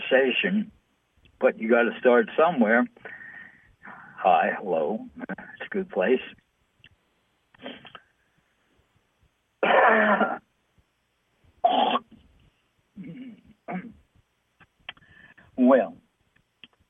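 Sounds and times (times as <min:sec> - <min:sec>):
speech: 0:00.1 - 0:00.8, 0:01.4 - 0:03.2, 0:04.2 - 0:06.4, 0:09.9 - 0:10.4, 0:15.6 - 0:16.0
person clearing throat: 0:09.6 - 0:10.4, 0:11.6 - 0:12.2, 0:13.0 - 0:14.0.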